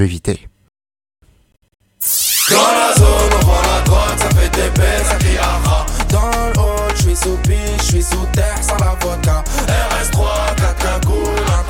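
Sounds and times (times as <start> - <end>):
speech: 0.0 - 0.5, 2.0 - 3.6, 7.1 - 11.6
rising synth sweep: 2.0 - 6.0
Russian rap track with synths: 2.0 - 11.6
loud booming bass kicks: 3.0 - 7.6.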